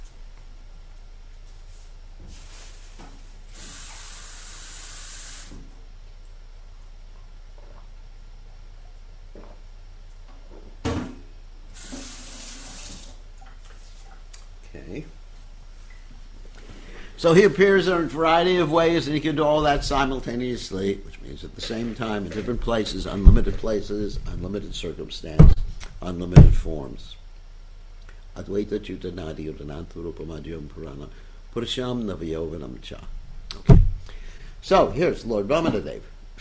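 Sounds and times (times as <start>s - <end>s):
drinking water running from a tap: 11.8s - 13.2s
speech: 14.9s - 15.2s, 17.2s - 27.2s, 28.4s - 33.7s, 34.6s - 36.3s.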